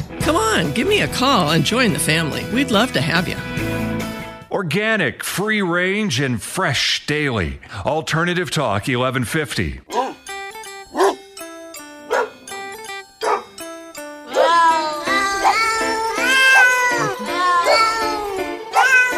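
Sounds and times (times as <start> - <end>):
speech: 0.3 - 3.9, 4.5 - 10.0
cat meows pitched into a bouncy musical tune: 14.3 - 19.1.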